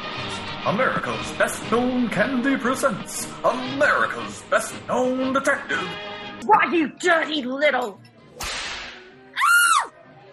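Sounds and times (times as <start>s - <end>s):
speech: 0.6s - 8.1s
whip crack striking a person: 8.4s - 9.0s.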